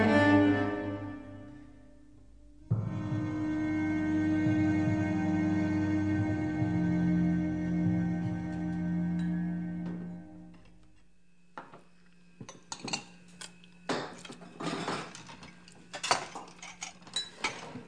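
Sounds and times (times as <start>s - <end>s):
low steady hum: 0.0s - 17.8s
dishes and cutlery clinking during washing up: 12.4s - 17.8s.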